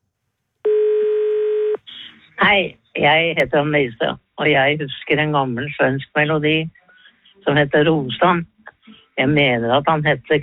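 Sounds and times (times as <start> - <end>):
steady electronic telephone tone of a call connecting on air: 0.6 - 1.8
speech: 2.4 - 6.8, 7.4 - 8.5, 9.2 - 10.4.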